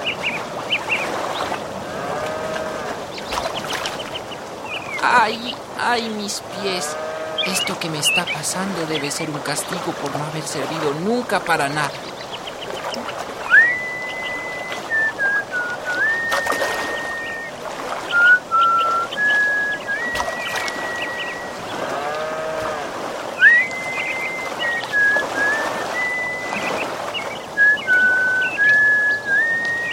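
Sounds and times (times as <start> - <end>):
flowing water of a stream: 0.0 - 29.9
small bird singing beside a stream: 3.1 - 9.8, 11.0 - 21.8, 23.4 - 25.2, 25.8 - 29.9
speech: 5.0 - 12.2.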